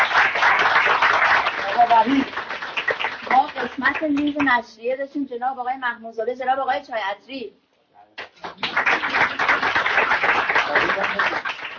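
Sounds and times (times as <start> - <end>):
audience applause: 0.0 - 4.4, 8.4 - 11.7
speech: 4.0 - 7.6, 10.7 - 11.5.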